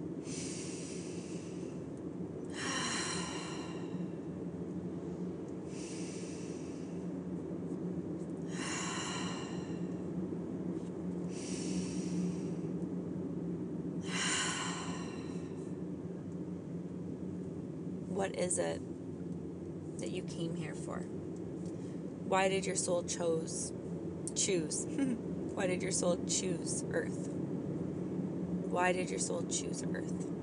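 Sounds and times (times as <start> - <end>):
steady low drone: 0.0 - 30.4
several people taking deep breaths together during a guided breathing exercise: 0.2 - 1.8, 2.5 - 4.1, 5.7 - 7.0, 8.5 - 10.0, 11.3 - 12.6, 14.1 - 15.5
speech: 18.3 - 18.9, 20.2 - 21.2, 22.3 - 23.8, 24.4 - 27.4, 28.8 - 30.4.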